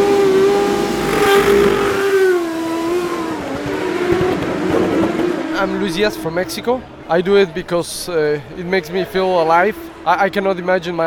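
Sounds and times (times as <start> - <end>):
race car engine on a street course: 0.0 - 7.0
speech: 5.8 - 11.0.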